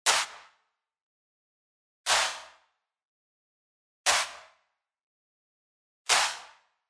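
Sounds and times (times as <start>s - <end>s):
wide clap: 0.1s - 0.5s, 2.1s - 2.5s, 4.1s - 4.5s, 6.1s - 6.6s.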